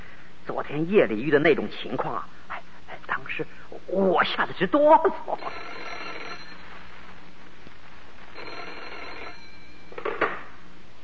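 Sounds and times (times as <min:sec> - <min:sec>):
speech: 0:00.5 - 0:02.4, 0:03.2 - 0:05.8
old-fashioned telephone bell ringing: 0:05.3 - 0:06.9, 0:08.4 - 0:10.2
telephone receiver clatter: 0:05.7 - 0:10.6.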